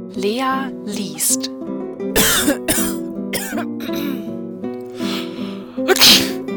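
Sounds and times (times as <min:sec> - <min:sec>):
speech: 0:00.2 - 0:02.8
person sneezing: 0:02.2 - 0:04.2, 0:05.0 - 0:06.4.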